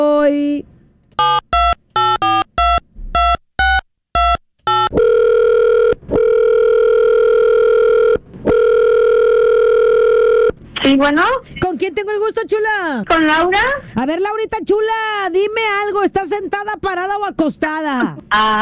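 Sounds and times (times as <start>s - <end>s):
speech: 0.0s - 1.4s, 11.0s - 18.6s
telephone keypad tones as a number is dialed: 1.2s - 10.5s.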